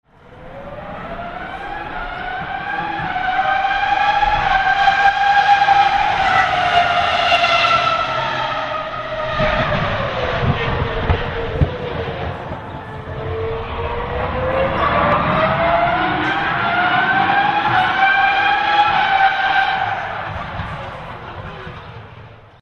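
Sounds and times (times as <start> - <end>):
BMW Williams Formula One car engine: 0.1 - 22.6.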